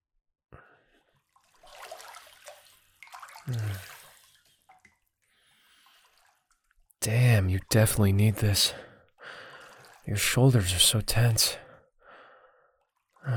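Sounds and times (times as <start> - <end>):
water rinsing hair: 1.2 - 6.8, 9.5 - 10.3
speech: 3.5 - 3.9, 7.0 - 8.9, 10.1 - 11.6.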